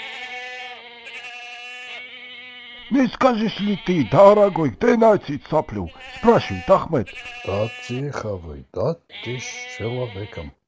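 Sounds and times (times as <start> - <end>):
herd of goats bleating: 0.0 - 8.2, 9.1 - 10.6
speech: 2.9 - 10.6.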